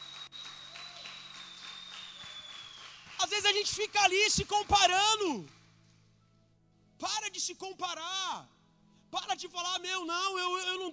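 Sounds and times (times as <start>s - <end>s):
crowd applauding: 0.0s - 5.7s
speech: 3.2s - 5.6s, 7.0s - 10.9s.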